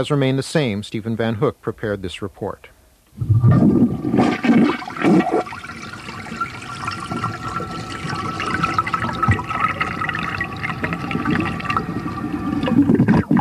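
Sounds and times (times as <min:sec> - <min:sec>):
speech: 0:00.0 - 0:04.5
toilet flushing: 0:03.5 - 0:13.3
toilet tank refilling with water: 0:03.5 - 0:13.3.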